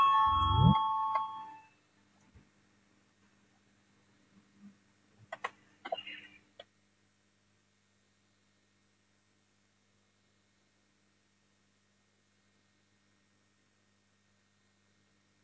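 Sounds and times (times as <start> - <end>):
parliamentary voting bell ringing: 0.0 - 1.6.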